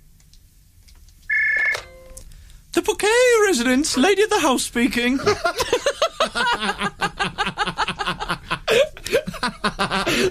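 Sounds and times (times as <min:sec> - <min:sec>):
old telephone ringing: 0:01.3 - 0:02.2
speech: 0:03.0 - 0:05.8, 0:09.8 - 0:10.2
laughter: 0:05.2 - 0:10.2.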